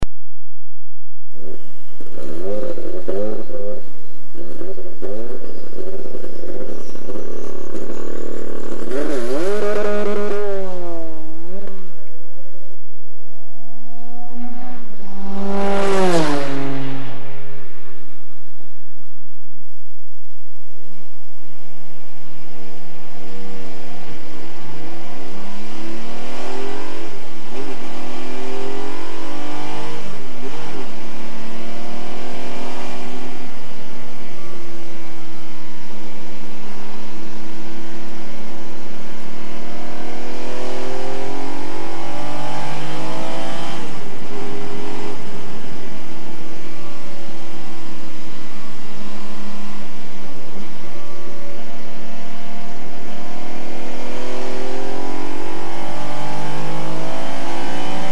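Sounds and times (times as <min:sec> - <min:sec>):
Porsche 962 race car engine: 0:01.3 - 0:58.1.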